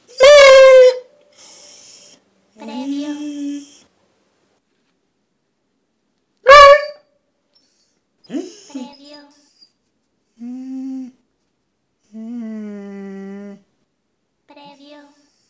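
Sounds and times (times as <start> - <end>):
dog yelping and whining: 0.0 - 3.9, 7.6 - 9.8.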